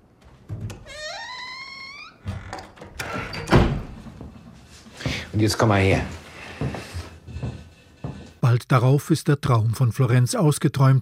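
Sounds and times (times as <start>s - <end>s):
door hinge creaking: 0.5s - 4.0s
door closing with a solid thud: 2.2s - 4.1s
speech: 5.4s - 6.2s, 8.7s - 11.0s.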